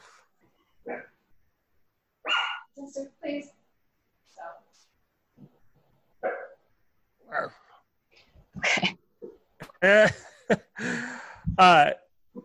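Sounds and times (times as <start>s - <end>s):
dog barking outside in sharp yelps: 2.2s - 2.7s, 6.2s - 6.6s
speech: 2.9s - 3.5s, 9.8s - 10.6s, 11.6s - 12.0s.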